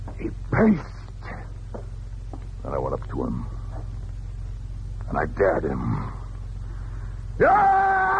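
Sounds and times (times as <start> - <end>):
faint noise: 0.0 - 8.1
speech: 0.2 - 1.0, 3.2 - 3.6, 5.2 - 6.2, 7.4 - 8.1
person imitating a screaming tiger: 7.4 - 8.1.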